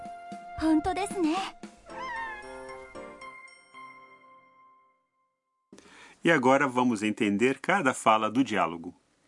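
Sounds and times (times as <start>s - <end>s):
speech: 0.6s - 1.6s, 6.2s - 9.0s
cat meowing in a cat café: 1.9s - 3.0s.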